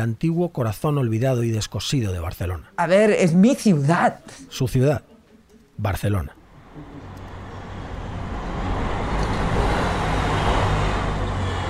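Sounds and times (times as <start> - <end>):
speech: 0.0 - 5.1, 5.8 - 7.0
bus and car engines rumbling: 6.4 - 11.6
busy city street traffic roar: 6.4 - 11.6
passing scooters whining: 6.5 - 11.6.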